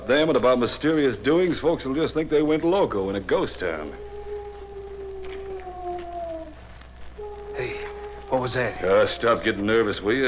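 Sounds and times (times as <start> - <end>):
steady hiss: 0.0 - 10.2
speech: 0.1 - 4.1, 8.3 - 10.2
person imitating owl hoot as a signal outside: 3.3 - 6.6, 7.2 - 10.2.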